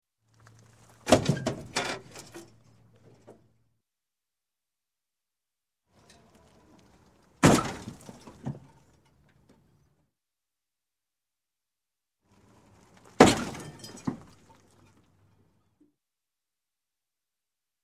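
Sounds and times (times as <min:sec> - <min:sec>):
small car head-on crash: 0:01.0 - 0:01.8, 0:07.4 - 0:08.7, 0:13.2 - 0:14.4.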